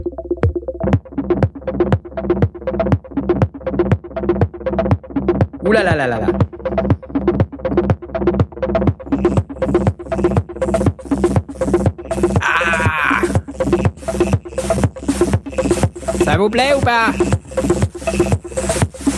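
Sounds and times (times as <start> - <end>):
looping synthesizer pattern through analog distortion processor: 0.0 - 19.1
speech: 5.7 - 6.5, 16.4 - 17.3
person exclaiming: 12.4 - 13.4.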